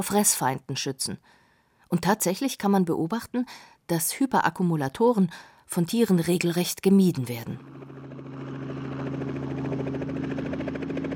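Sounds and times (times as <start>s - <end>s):
speech: 0.0s - 7.8s
helicopter in rapid climbing flight over a South Sea island: 7.6s - 11.1s.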